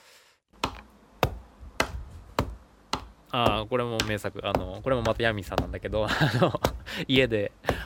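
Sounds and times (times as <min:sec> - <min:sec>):
rubber stamp being pressed down with a crisp tap and dull thump: 0:00.6 - 0:05.8
speech: 0:03.3 - 0:07.8
laughter: 0:06.0 - 0:07.2.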